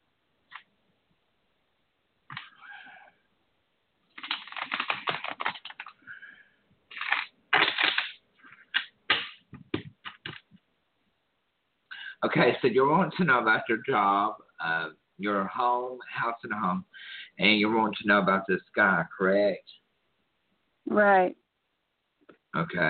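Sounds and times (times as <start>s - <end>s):
deck of cards being shuffled: 4.1s - 6.0s, 6.9s - 10.5s
speech: 12.3s - 19.8s, 21.0s - 21.4s, 22.6s - 22.8s.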